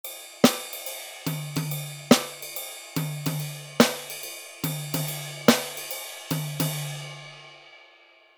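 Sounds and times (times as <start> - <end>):
drummer playing swing: 0.0 - 7.2.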